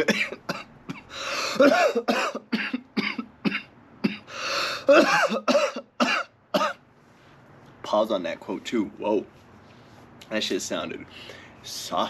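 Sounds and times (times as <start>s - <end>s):
speech: 0.0s - 0.5s, 1.6s - 2.7s, 7.9s - 9.4s, 10.3s - 12.0s
person in a harsh raspy coughing fit: 0.0s - 6.8s.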